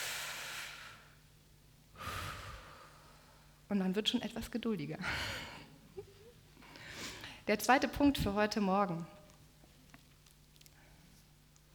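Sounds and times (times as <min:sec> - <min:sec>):
deep breathing during a calming exercise: 0:00.0 - 0:01.2, 0:01.9 - 0:03.6, 0:06.6 - 0:07.5
speech: 0:03.7 - 0:05.5, 0:07.5 - 0:09.2.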